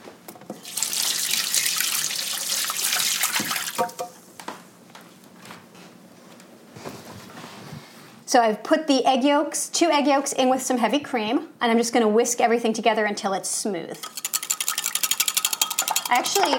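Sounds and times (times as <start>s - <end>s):
water running from a tap: 0.6s - 3.8s
speech: 8.3s - 14.2s, 16.1s - 16.5s.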